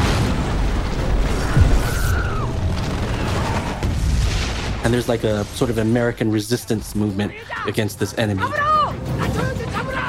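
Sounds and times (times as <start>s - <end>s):
movie-style explosion after plane crashes into house: 0.0s - 6.3s
speech: 4.9s - 9.4s.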